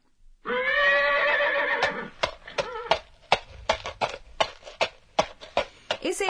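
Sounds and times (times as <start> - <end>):
horse whinnying: 0.4 - 4.0
horse hooves clip-clopping at a walking pace: 1.8 - 6.2.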